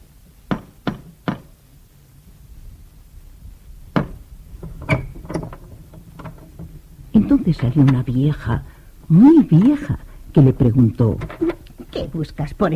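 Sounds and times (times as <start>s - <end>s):
firm knocking on a wooden door: 3.9s - 5.5s
thuds and taps: 3.9s - 6.8s
speech: 7.5s - 12.7s.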